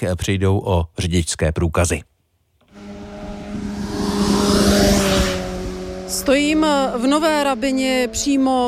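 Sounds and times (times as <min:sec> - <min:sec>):
speech: 0:00.0 - 0:02.1, 0:06.1 - 0:08.6
motorcycle with high-revving engine speeding past: 0:02.7 - 0:08.6.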